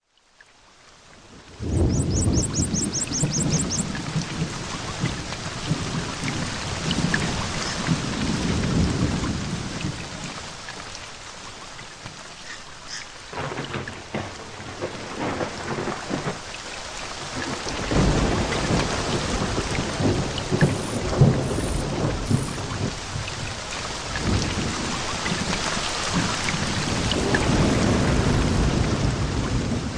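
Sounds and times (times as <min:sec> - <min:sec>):
rain storm: 0:00.0 - 0:29.9
thunder in a storm: 0:01.6 - 0:10.0, 0:13.4 - 0:16.4, 0:17.4 - 0:23.0, 0:26.2 - 0:29.9.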